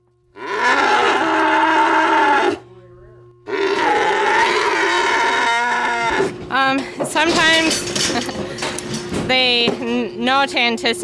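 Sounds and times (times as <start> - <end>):
cow bellowing: 0.3 - 2.7, 3.4 - 6.5
speech: 6.7 - 8.3, 9.3 - 11.0.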